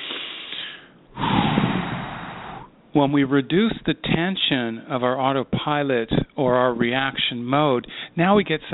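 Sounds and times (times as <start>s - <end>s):
deep breath taken to release body tension: 0.1s - 2.8s, 7.9s - 8.2s
speech: 2.9s - 8.7s.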